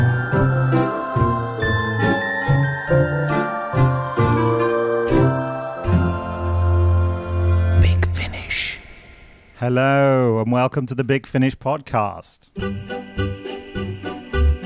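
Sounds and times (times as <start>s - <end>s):
bright tinkling instrumental podcast theme tune with chimes and bass line: 0.0s - 9.6s, 12.6s - 14.6s
speech: 10.6s - 13.4s.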